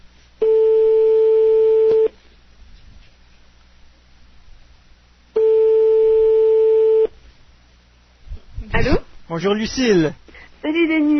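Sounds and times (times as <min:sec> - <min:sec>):
French telephone ringing tone on an outgoing call: 0:00.4 - 0:02.1, 0:05.4 - 0:07.1
speech: 0:09.4 - 0:11.1.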